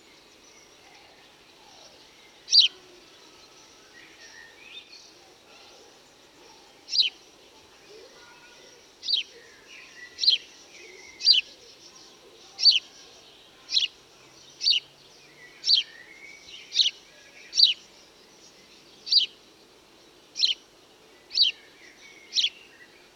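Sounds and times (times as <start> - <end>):
house sparrow (Passer domesticus) chirping in Cowley, Gloucestershire, England: 1.8 - 2.8, 6.5 - 7.3, 8.2 - 19.4, 20.3 - 23.1.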